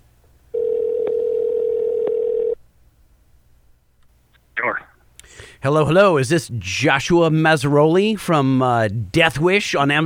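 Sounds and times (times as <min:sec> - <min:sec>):
telephone tone as a number is dialled: 0:00.6 - 0:02.6
speech: 0:05.6 - 0:10.0.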